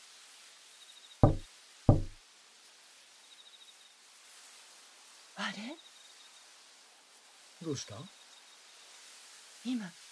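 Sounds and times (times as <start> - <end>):
firm knocks on a door: 1.2 - 2.2
speech: 5.5 - 5.9, 7.6 - 8.2, 9.6 - 10.0.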